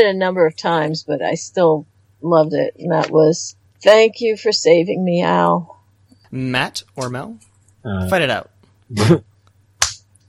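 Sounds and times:
speech: 0.0 - 9.3
faint low hum: 0.0 - 10.2
sharp slap: 6.9 - 7.3, 9.8 - 10.0.

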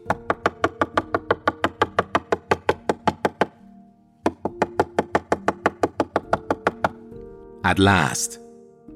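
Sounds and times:
rapid firm knocking on a door: 0.0 - 3.6, 4.2 - 7.1
speech: 7.7 - 8.4.

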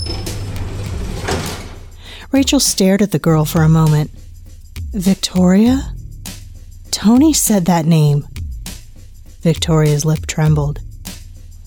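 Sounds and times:
lift doors sliding open with a mechanical whoosh: 0.0 - 2.0
steady low hum: 0.0 - 11.6
speech: 2.3 - 4.2, 4.9 - 5.9, 7.0 - 8.3, 9.4 - 10.8.

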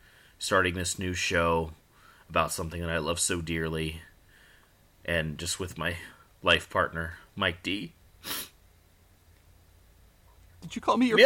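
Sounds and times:
quiet low room hum: 0.0 - 11.2
speech: 0.4 - 4.1, 5.0 - 8.5, 10.6 - 11.2
single sharp loud sneeze: 8.2 - 8.6.

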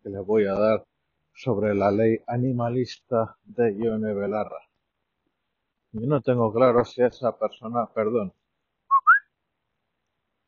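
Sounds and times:
speech: 0.1 - 4.7, 5.9 - 8.4
two-note whistle to call a female dog: 8.9 - 9.2.

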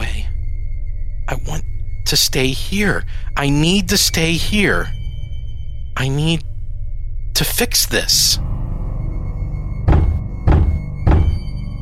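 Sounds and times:
low rumbling background: 0.0 - 11.8
speech: 1.3 - 5.0, 6.0 - 6.5, 7.4 - 8.5
hard fist pounding on drywall in a residential complex: 9.9 - 11.4.

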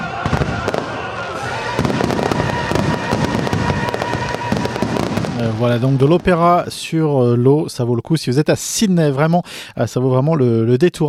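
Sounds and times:
fireworks crackling bursts at an outdoor opera show on the water: 0.0 - 7.1
speech: 5.4 - 11.0.

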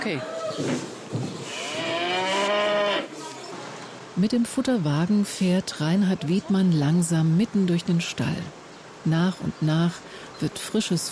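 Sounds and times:
speech: 0.0 - 1.3, 4.2 - 11.0
cows mooing in an open barn on an organic farm before feeding: 1.5 - 3.1.

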